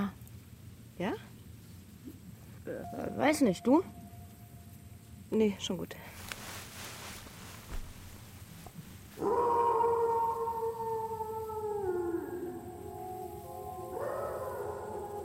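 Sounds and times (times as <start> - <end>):
speech: 1.0 - 1.3, 2.7 - 4.0, 5.3 - 6.2
wolves howling: 9.2 - 15.2.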